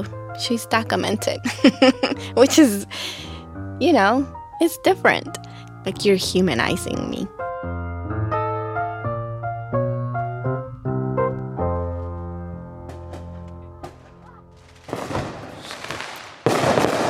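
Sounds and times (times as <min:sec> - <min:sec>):
speech: 0:00.0 - 0:07.4
tonal music: 0:00.0 - 0:15.0
laughter: 0:01.4 - 0:02.9
New Year's fireworks exploding: 0:12.9 - 0:17.0.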